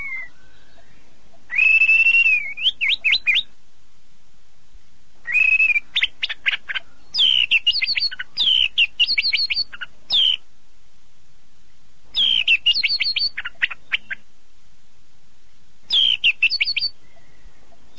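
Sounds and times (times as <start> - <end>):
bird song of rapid bright twittering phrases with sweeping whistled notes: 0.0 - 3.6, 5.2 - 10.5, 11.7 - 14.3, 15.5 - 17.9.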